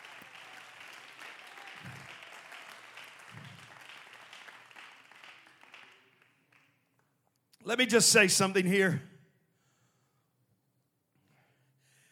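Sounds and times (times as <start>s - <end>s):
audience clapping hands in praise: 0.0s - 6.7s
speech: 7.7s - 9.1s.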